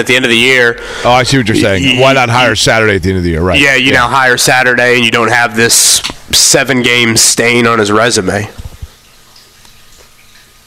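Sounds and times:
speech: 0.0s - 8.6s
soft water drips: 8.4s - 10.6s.

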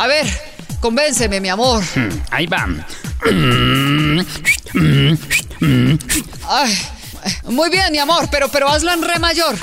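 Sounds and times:
speech: 0.1s - 9.6s
person imitating a donkey braying: 1.8s - 6.7s.

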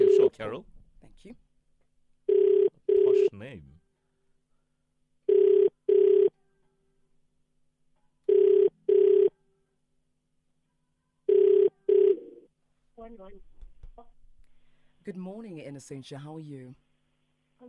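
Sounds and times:
speech: 0.4s - 1.5s, 3.3s - 3.8s, 13.0s - 13.5s, 15.1s - 16.8s
phone ringback tone on an outgoing call: 2.3s - 3.3s, 5.3s - 6.4s, 8.3s - 9.4s, 11.3s - 12.5s.

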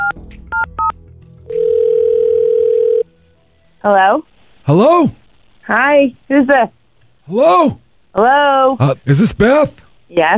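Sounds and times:
steady telephone tone: 1.5s - 3.1s
speech: 3.8s - 10.3s.

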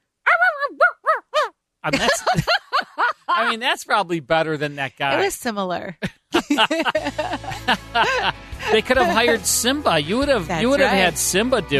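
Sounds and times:
person imitating dog barking as a radio drama sound effect: 0.3s - 2.2s
speech: 1.8s - 2.6s, 3.4s - 11.7s
laughter: 1.9s - 5.2s, 6.3s - 11.7s.

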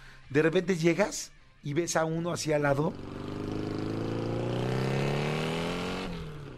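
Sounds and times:
speech: 0.3s - 3.2s
motorboat outboard motor revving: 2.8s - 6.5s.

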